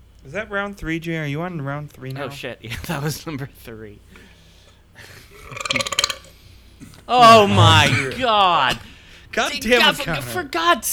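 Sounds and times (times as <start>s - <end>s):
speech: 0.2s - 4.3s, 5.0s - 6.0s, 7.1s - 10.9s
loud rattling burp: 5.4s - 6.2s, 7.2s - 8.2s.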